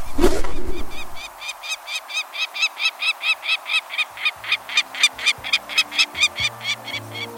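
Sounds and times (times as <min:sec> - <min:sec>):
rustle: 0:00.0 - 0:07.3
peregrine falcon harsh rapid cacking: 0:00.9 - 0:07.3.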